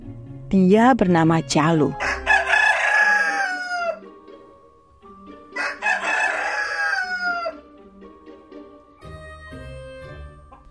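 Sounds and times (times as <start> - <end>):
speech: 0.5 - 2.1
rooster crowing: 2.0 - 4.2, 5.5 - 7.8.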